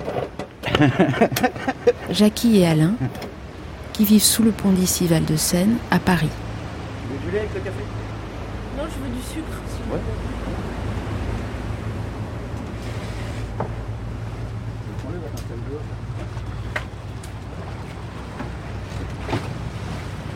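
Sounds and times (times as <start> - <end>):
passing river boat engine rumbling: 0.0 - 20.3
water sloshing and lapping under a bridge at Île Saint-Germain: 0.0 - 20.3
laughter: 0.6 - 2.2
speech: 0.8 - 3.3, 4.0 - 6.4, 7.3 - 8.0, 8.9 - 10.5
water splashes under a bridge: 2.8 - 20.3.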